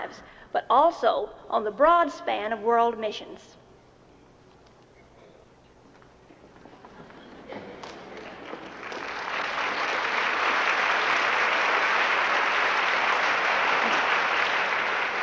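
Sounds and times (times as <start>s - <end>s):
speech: 0.1s - 3.6s
large crowd audience clapping in Portland: 6.4s - 15.2s.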